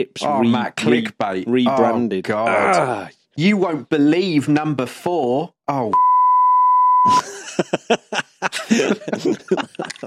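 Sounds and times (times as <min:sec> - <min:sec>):
speech: 0:00.0 - 0:06.1, 0:07.0 - 0:10.0
censor beep tone: 0:05.9 - 0:07.2
people chuckling and laughing: 0:07.1 - 0:10.0.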